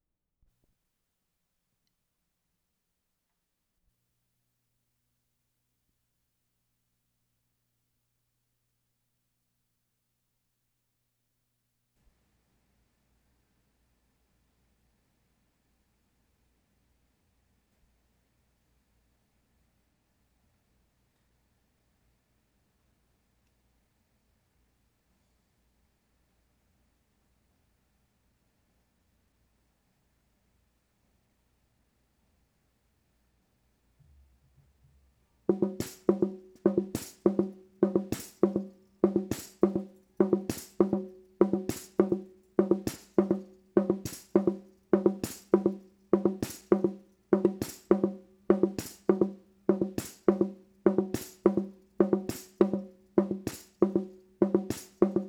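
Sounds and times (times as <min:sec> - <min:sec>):
hand drum: 0:35.5 - 0:55.2.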